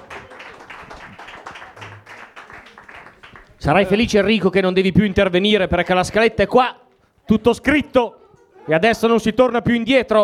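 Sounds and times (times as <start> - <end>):
audience at a comedy night clapping in applause: 0.0 - 3.6
speech: 3.6 - 10.2.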